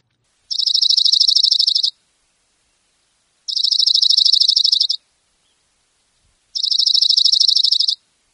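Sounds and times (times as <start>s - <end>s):
Oregon Junco singing high rapid trills: 0.5s - 2.0s, 3.5s - 5.6s, 6.5s - 8.0s.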